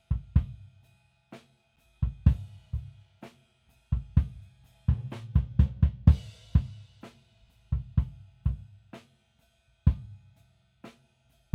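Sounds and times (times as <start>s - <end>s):
drum kit playing without distortion: 2.0s - 9.1s.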